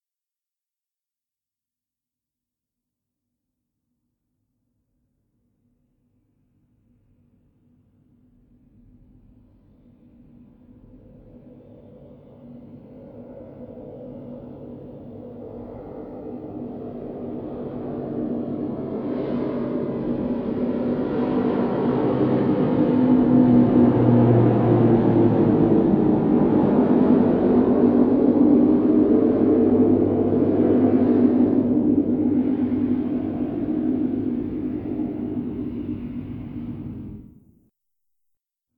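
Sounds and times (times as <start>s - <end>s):
propeller aircraft passing: 15.8s - 37.3s.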